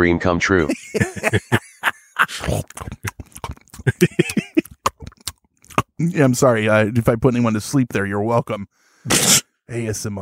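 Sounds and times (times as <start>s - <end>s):
speech: 0.0s - 1.6s, 2.3s - 3.0s, 6.2s - 10.1s
laughter: 0.6s - 3.2s, 3.8s - 4.9s
voice imitating gulping and choking: 2.2s - 6.2s.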